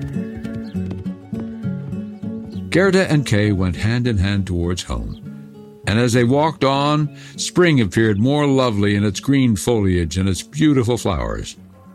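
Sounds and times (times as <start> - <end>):
horse hooves clip-clopping as a rider rides off: 0.0 - 3.3
speech: 2.8 - 5.2, 5.9 - 11.6.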